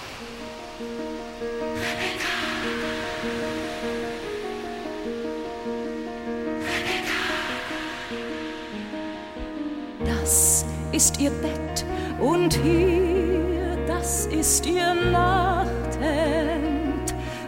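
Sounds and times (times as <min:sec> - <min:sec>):
surf waves breaking on shore: 0:00.0 - 0:10.0
soft sustained musical tones: 0:00.0 - 0:17.4
speech: 0:00.8 - 0:02.1, 0:11.0 - 0:13.2, 0:14.0 - 0:16.5.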